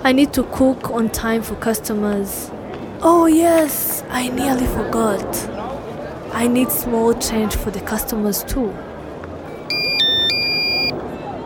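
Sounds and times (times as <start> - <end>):
speech: 0.0 - 5.6, 6.3 - 8.9
low murmur: 0.0 - 11.4
mobile phone ringtone electronic melody: 9.7 - 10.9.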